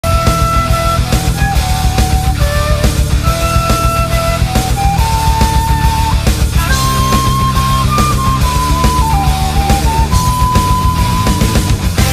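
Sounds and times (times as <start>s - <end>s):
flute ringtone: 0.0s - 12.0s.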